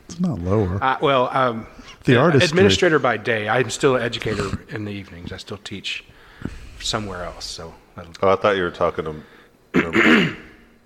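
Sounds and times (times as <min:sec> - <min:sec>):
speech: 0:00.1 - 0:10.5
throat clearing: 0:04.2 - 0:04.7, 0:09.7 - 0:10.6.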